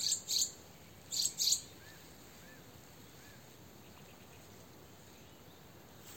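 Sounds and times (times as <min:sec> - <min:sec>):
Eurasian wren Troglodytes troglodytes ticking calls: 0:00.0 - 0:02.0
quiet background hiss: 0:00.0 - 0:06.1.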